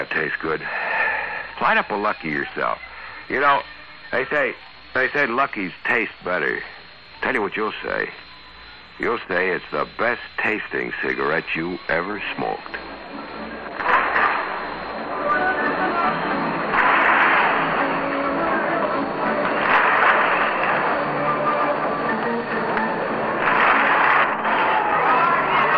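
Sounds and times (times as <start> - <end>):
speech: 0.0 - 0.9, 1.6 - 8.3, 9.0 - 13.3
ballpark organ music: 2.0 - 25.7
roar of many voices: 23.4 - 25.7.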